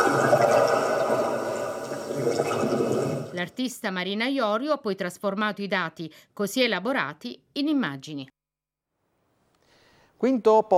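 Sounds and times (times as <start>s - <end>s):
underwater sea sound recorded by echo sounder: 0.0s - 3.4s
speech: 3.4s - 8.4s, 10.2s - 10.7s.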